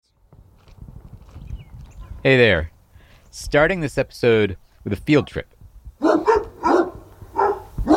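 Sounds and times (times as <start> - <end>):
speech: 2.2 - 2.7, 3.3 - 5.5
dogs barking: 6.0 - 7.9.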